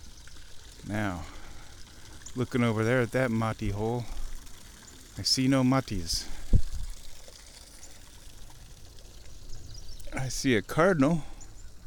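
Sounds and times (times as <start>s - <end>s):
creek water trickling: 0.0s - 11.8s
speech: 0.9s - 1.4s, 2.4s - 4.2s, 5.2s - 6.4s, 10.2s - 11.3s.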